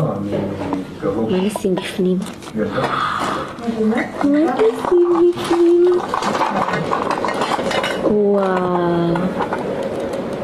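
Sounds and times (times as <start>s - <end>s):
speech: 0.0s - 7.5s, 8.1s - 9.6s
pot with a lid being handled: 4.5s - 9.7s.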